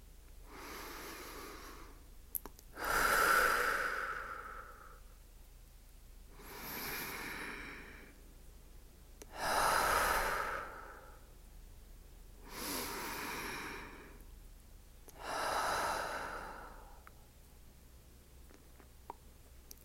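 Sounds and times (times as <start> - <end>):
slow deep breaths close to the microphone: 0.4 - 2.1, 2.7 - 5.1, 6.3 - 8.3, 9.2 - 11.3, 12.4 - 14.3, 15.1 - 17.2.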